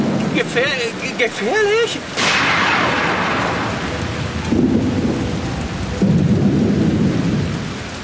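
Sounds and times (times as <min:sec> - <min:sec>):
thunder rumbling on a mountain: 0:00.0 - 0:01.4, 0:02.0 - 0:08.0
steady rain on a mountain: 0:00.0 - 0:08.0
speech: 0:00.4 - 0:02.7
heavier rolling thunder booms: 0:02.1 - 0:08.0.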